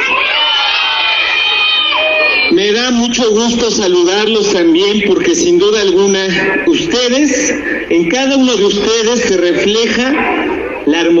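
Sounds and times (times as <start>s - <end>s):
children's whoops: 0.0s - 2.5s
crowd of children cheering and shouting at a year-end holiday event: 0.0s - 2.8s
speech: 3.2s - 11.1s.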